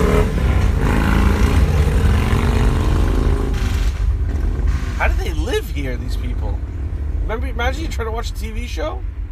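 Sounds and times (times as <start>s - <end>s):
motorcycles passing outside in Brooklyn: 0.0s - 5.2s
speech: 6.0s - 6.7s, 7.3s - 9.2s.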